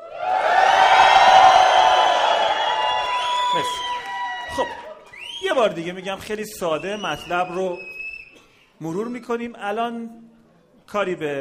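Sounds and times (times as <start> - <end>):
group screaming and cheering hooray: 0.0 - 5.4
speech: 5.6 - 7.9, 8.8 - 10.3, 10.9 - 11.4.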